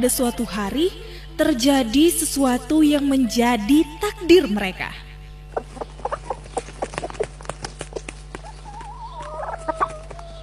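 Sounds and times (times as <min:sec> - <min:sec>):
speech: 0:00.0 - 0:05.0
steady low hum: 0:00.0 - 0:10.4
hen and rooster clucking: 0:05.5 - 0:10.4.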